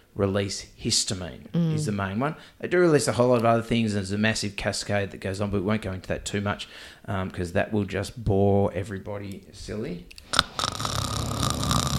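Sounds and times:
speech: 0.2s - 10.4s
person imitating snoring: 10.4s - 11.9s.

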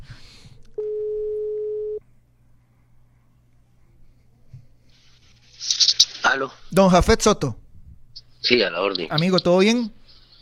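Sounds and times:
quiet telephone line hum: 0.0s - 10.3s
telephone ringback tone while placing a call: 0.8s - 2.0s
speech: 6.4s - 7.6s, 8.4s - 10.0s.

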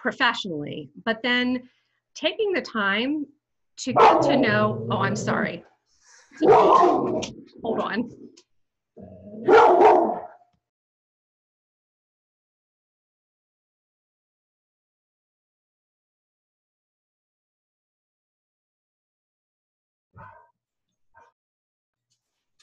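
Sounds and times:
speech: 0.0s - 5.7s, 6.3s - 10.2s
dogs barking: 3.9s - 5.5s, 6.4s - 7.9s, 9.4s - 10.5s, 20.2s - 20.5s.

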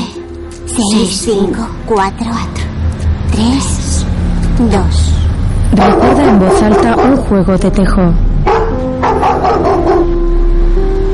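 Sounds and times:
steady low hum: 0.0s - 11.0s
speech: 0.8s - 2.7s, 3.3s - 3.8s, 4.6s - 5.1s, 5.7s - 8.3s
aggressive dog barking outside a stone house: 5.7s - 7.3s, 8.4s - 10.2s.

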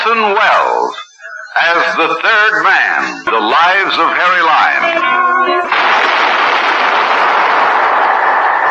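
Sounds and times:
speech: 0.1s - 6.1s
gunshot in a sewer: 5.7s - 8.5s.

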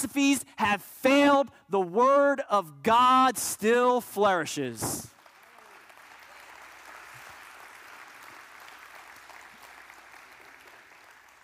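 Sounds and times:
speech: 0.0s - 5.1s
audience applause: 5.0s - 11.4s.

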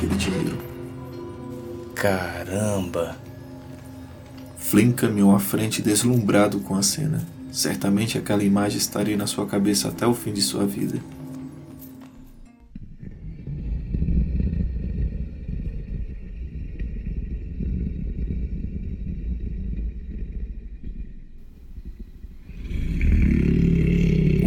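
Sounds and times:
speech: 2.0s - 3.2s, 4.7s - 11.2s
deep echoing rumble of a creature snoring in a cave: 12.7s - 24.4s.

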